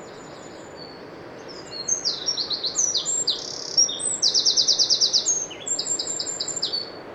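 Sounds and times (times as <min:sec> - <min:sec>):
Eurasian wren Troglodytes troglodytes singing shrill rapid warbling song: 0:00.0 - 0:07.0.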